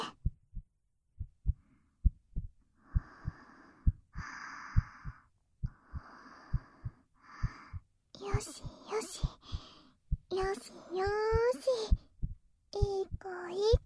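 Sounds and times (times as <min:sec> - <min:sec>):
heartbeat heard with an ear pressed against a chest: 0:00.0 - 0:13.8
speech: 0:08.4 - 0:09.3, 0:10.4 - 0:12.0, 0:12.9 - 0:13.8.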